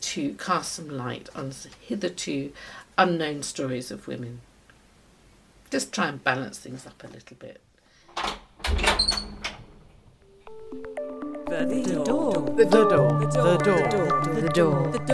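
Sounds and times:
speech: 0.2s - 4.5s, 5.7s - 9.3s, 11.5s - 15.1s
door latch clunks and rattles: 8.1s - 10.2s
door creaking slowly open: 8.1s - 10.3s.

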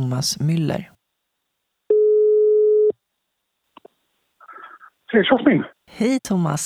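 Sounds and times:
speech: 0.0s - 1.0s, 5.1s - 6.6s
telephone ringback tone during a call: 1.9s - 2.9s.

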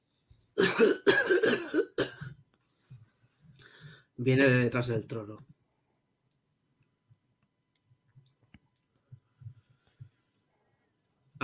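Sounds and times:
single person coughing softly behind a throne: 0.6s - 2.4s
speech: 0.8s - 1.2s, 4.2s - 5.6s.

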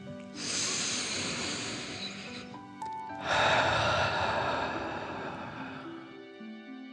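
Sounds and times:
deep breathing in and out during a guided meditation: 0.3s - 2.6s, 3.2s - 6.3s.

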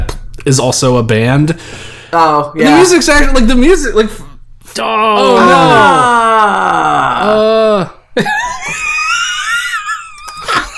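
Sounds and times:
speech: 0.4s - 8.8s
high strained wail: 4.8s - 8.0s
over-the-top theatrical movie scream: 4.8s - 8.0s
laughter: 8.2s - 10.7s.

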